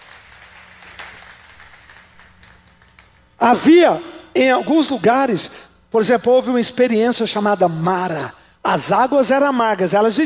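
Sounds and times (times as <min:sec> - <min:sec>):
audience giving loud applause: 0:00.0 - 0:03.1
speech: 0:03.4 - 0:10.2.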